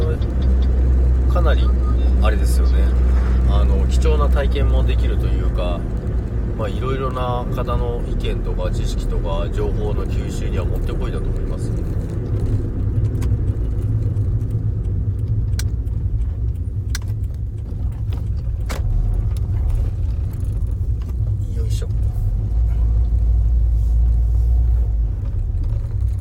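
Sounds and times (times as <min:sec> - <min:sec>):
car engine drone and road rumble inside a moving car: 0:00.0 - 0:26.1
speech: 0:01.4 - 0:06.0, 0:06.6 - 0:11.9
small rattles and clicks inside a moving car: 0:10.0 - 0:23.4, 0:25.0 - 0:26.1.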